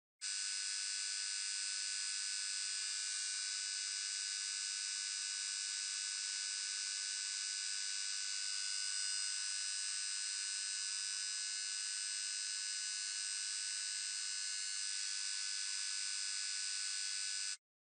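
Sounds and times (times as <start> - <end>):
fluorescent light buzzing lightly: 0.2 - 17.6.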